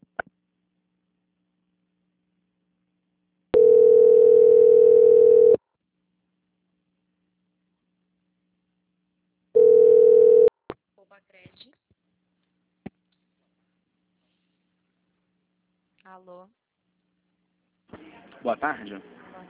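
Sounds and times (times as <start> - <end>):
telephone ringback tone during a call transfer: 3.6 - 5.6, 9.6 - 10.5
speech: 16.1 - 16.6, 18.4 - 19.2.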